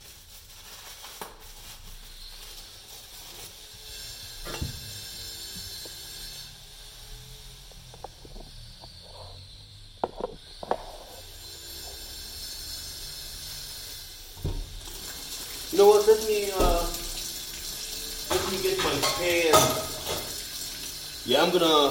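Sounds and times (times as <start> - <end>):
tap water running into a pot: 11.5 - 21.9
person talking: 15.7 - 17.2, 18.3 - 19.9, 21.2 - 21.9.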